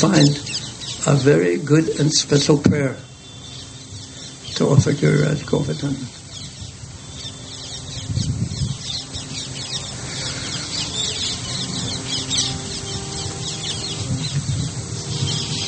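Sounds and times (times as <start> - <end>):
speech: 0.0 - 0.4, 1.0 - 3.1, 4.6 - 6.2
flock of parrots chattering and screeching: 0.0 - 2.2, 6.1 - 15.6.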